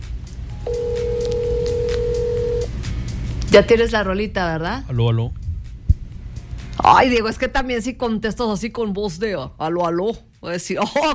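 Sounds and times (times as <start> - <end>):
telephone ringing tone on an outgoing call: 0.6 - 2.7
low rumble: 0.7 - 9.6
speech: 3.6 - 5.4, 6.9 - 11.1.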